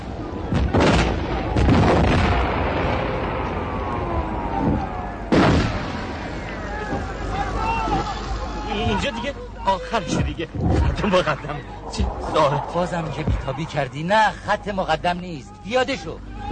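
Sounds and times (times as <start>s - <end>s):
loud booming explosions: 0.0s - 7.3s, 10.2s - 14.0s
continuous rumbling din of battle: 0.0s - 9.2s, 9.9s - 14.0s
speech: 9.9s - 16.3s.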